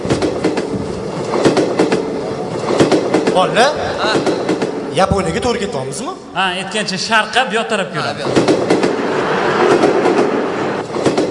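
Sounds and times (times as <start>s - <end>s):
metro train wheels clacking rhythmically: 0.0s - 5.7s, 8.0s - 11.2s
metro train travelling along the track: 0.0s - 11.2s
speech: 3.4s - 8.9s.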